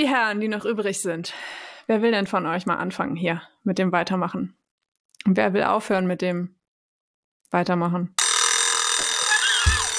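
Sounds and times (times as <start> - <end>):
speech: 0.0 - 4.6, 5.2 - 6.6, 7.5 - 8.2
alarm clock ringing with a bright electronic tone: 8.2 - 9.9.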